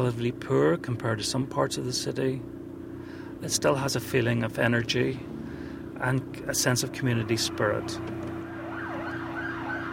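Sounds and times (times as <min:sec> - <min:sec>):
speech: 0:00.0 - 0:02.6, 0:03.4 - 0:05.4, 0:06.0 - 0:08.2
traffic rumble in the street: 0:00.0 - 0:09.9
ambulance siren wailing: 0:08.3 - 0:09.9.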